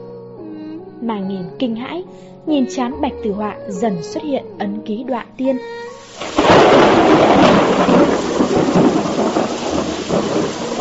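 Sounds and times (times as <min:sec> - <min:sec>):
speech: 0:01.0 - 0:08.1
big waves in a storm: 0:06.0 - 0:10.7
gusting wind in a storm: 0:06.0 - 0:10.7
heavy rain in a storm: 0:06.0 - 0:10.7
thunder rumbling in a storm: 0:06.0 - 0:10.7.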